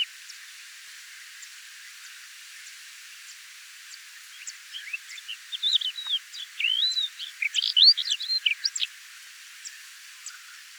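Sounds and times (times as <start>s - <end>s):
crested lark Galerida cristata giving varied sweet whistled notes: 4.2s - 8.9s.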